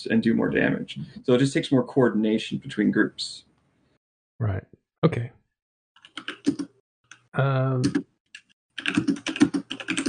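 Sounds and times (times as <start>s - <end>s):
speech: 0.0s - 3.5s, 4.4s - 5.4s, 6.4s - 6.7s, 7.4s - 8.1s, 8.8s - 10.0s
clicking keystrokes on a computer keyboard over a voice chat: 6.0s - 10.0s.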